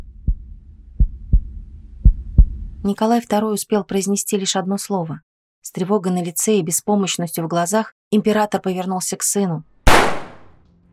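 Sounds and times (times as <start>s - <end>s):
speech: 2.8s - 10.2s
gunshot at the execution of the Russian tsar's family: 9.9s - 10.6s.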